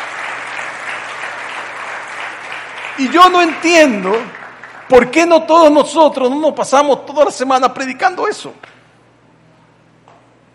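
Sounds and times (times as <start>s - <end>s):
audience applause: 0.0s - 5.8s
speech: 3.0s - 8.8s.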